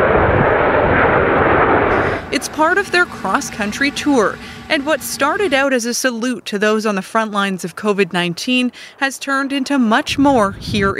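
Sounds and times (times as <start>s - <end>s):
military aerobatic team jet aircraft flying low overhead: 0.0s - 5.8s
speech: 2.5s - 10.9s.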